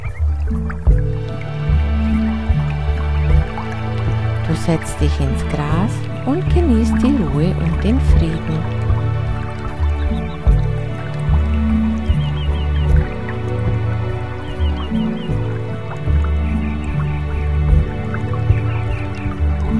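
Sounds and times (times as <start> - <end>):
small birds chirping: 0.0 - 0.9, 7.2 - 19.7
babbling stream trickling and dripping: 0.0 - 19.7
soft sustained musical drone: 0.0 - 19.7
speech: 4.6 - 8.8.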